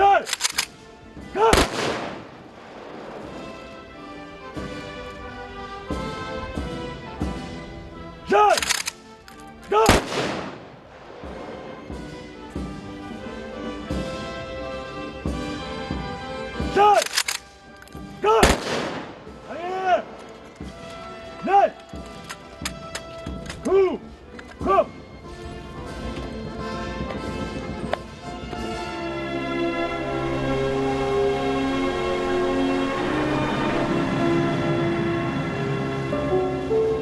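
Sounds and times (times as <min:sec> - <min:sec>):
rifle salute volleys with brief echoes: 0:00.0 - 0:04.1, 0:08.2 - 0:12.4, 0:16.5 - 0:25.0
sustained band music: 0:00.0 - 0:37.0.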